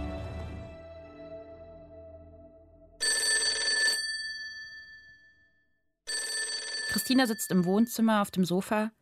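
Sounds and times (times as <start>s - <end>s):
landline telephone on a dresser ringing in a doctor's living room: 3.0s - 5.4s, 6.1s - 8.1s
speech: 7.1s - 9.0s.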